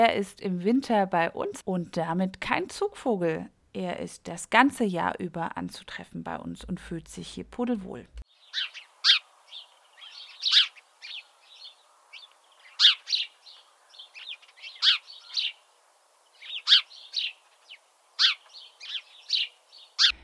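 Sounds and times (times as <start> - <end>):
speech: 0.0 - 8.8
house sparrow chirping: 8.3 - 20.2.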